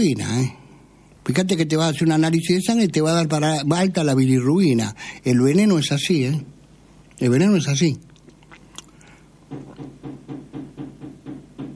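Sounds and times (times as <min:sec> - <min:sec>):
speech: 0:00.0 - 0:00.6, 0:01.2 - 0:06.5, 0:07.2 - 0:08.1
dull knocking on a door: 0:09.5 - 0:11.7.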